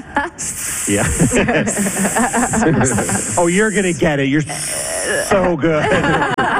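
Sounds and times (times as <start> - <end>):
laughter: 0.0 - 3.9, 5.3 - 6.5
speech: 0.2 - 6.5
person imitating a snake with a long steady hiss: 0.4 - 5.5.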